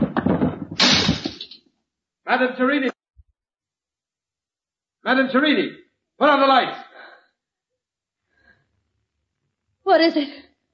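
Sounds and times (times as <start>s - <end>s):
man's footsteps running down stairs: 0.0s - 1.4s
speech: 2.3s - 2.9s, 5.0s - 6.8s, 9.9s - 10.4s.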